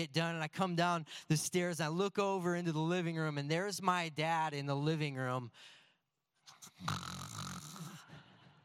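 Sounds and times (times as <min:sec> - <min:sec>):
speech: 0:00.0 - 0:05.8, 0:06.6 - 0:07.5
man snoring in his sleep: 0:06.7 - 0:08.1.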